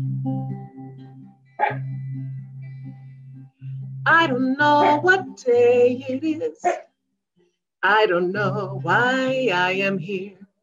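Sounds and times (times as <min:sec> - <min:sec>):
dog barking: 0:01.6 - 0:01.8, 0:04.8 - 0:05.0, 0:06.6 - 0:06.8
speech: 0:04.1 - 0:06.9, 0:07.8 - 0:10.4.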